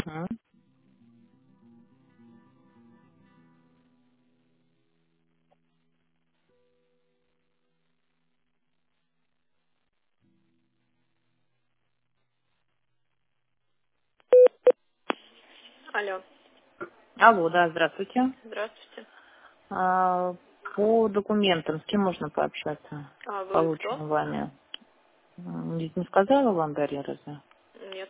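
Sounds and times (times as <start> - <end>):
telephone tones while a call is being transferred: 14.3 - 14.8
speech: 16.0 - 24.6, 25.4 - 27.5.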